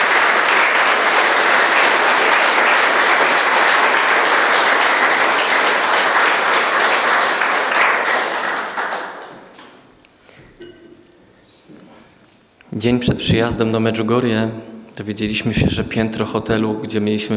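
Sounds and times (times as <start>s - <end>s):
large audience applauding: 0.0s - 9.9s
speech: 12.8s - 17.3s.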